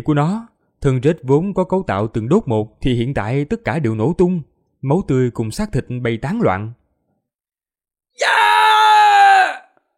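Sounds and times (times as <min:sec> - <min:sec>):
speech: 0:00.0 - 0:06.8
man screaming loudly: 0:08.2 - 0:09.8.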